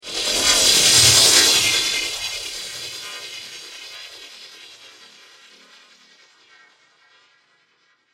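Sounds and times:
digital sci-fi sweeper: 0.1s - 5.1s.

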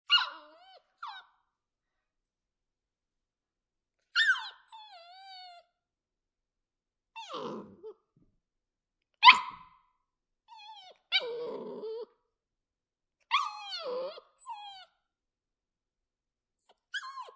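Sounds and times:
three month old female Labbe puppy whimpering and crying: 0.1s - 1.3s, 4.2s - 5.6s, 7.2s - 8.0s, 10.5s - 12.1s, 13.3s - 14.9s, 16.6s - 17.3s.

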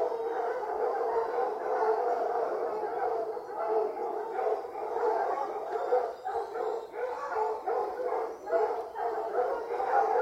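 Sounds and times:
hunting hounds barking and baying at kennels at feeding time: 0.0s - 10.2s.

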